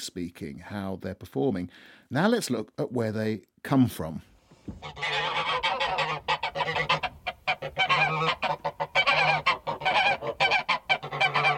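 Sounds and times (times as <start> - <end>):
speech: 0.0 - 7.0
flock of geese honking: 4.8 - 11.5.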